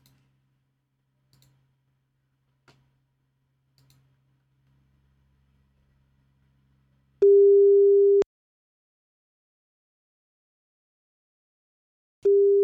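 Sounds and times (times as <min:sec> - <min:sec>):
telephone ringback tone from an outgoing call: 0:07.2 - 0:08.2, 0:12.3 - 0:12.6.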